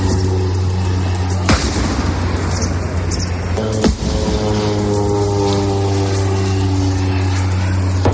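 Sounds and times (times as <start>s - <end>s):
droning engine hum: 0.0s - 8.1s
Israeli bombs exploding near the Gaza border: 1.4s - 6.3s.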